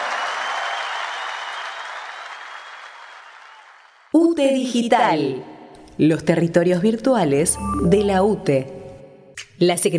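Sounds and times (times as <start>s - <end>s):
crowd applauding: 0.0s - 4.1s
speech: 4.4s - 8.8s, 9.6s - 9.9s.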